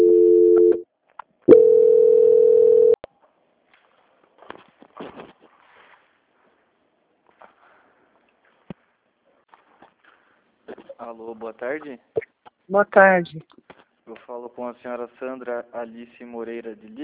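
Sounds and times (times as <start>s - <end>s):
telephone transfer tone on a bank call: 0.0s - 0.8s, 1.5s - 3.0s
speech: 11.2s - 13.6s, 14.3s - 17.0s.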